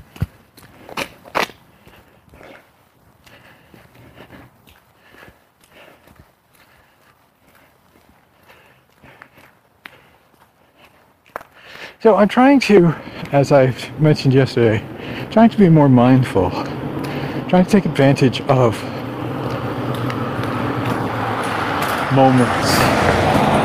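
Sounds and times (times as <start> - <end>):
person's footsteps scuffing and crunching while walking: 0.0 - 11.7, 12.7 - 23.6
speech: 12.0 - 16.8, 17.5 - 19.0, 22.1 - 23.0.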